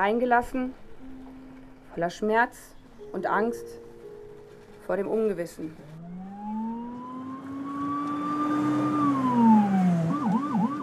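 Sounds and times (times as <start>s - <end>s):
speech: 0.0s - 0.8s, 2.0s - 3.8s, 4.9s - 5.9s
steady rumble of morning rush-hour road noise: 4.3s - 10.8s
sirens from a minister's speeding motorcade wailing toward Tel Aviv: 5.8s - 10.8s.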